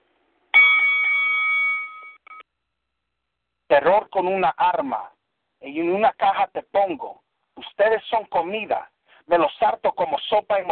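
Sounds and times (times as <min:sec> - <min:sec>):
bell ringing: 0:00.5 - 0:02.4
speech: 0:03.7 - 0:10.7.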